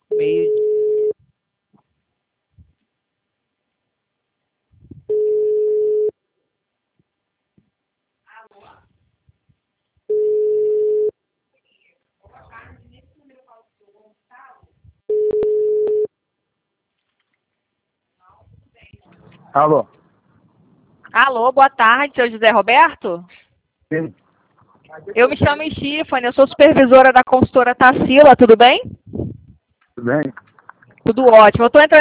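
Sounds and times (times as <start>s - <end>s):
telephone ringback tone on a call: 0.1s - 1.2s, 5.1s - 6.1s, 10.1s - 11.1s, 15.1s - 16.1s
speech: 0.2s - 0.6s, 19.6s - 20.0s, 21.3s - 24.2s, 24.9s - 29.0s, 30.0s - 30.4s, 31.1s - 31.9s.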